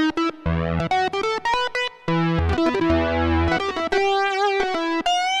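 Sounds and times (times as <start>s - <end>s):
Roland MKS-50 lead synth: 0.1s - 5.3s.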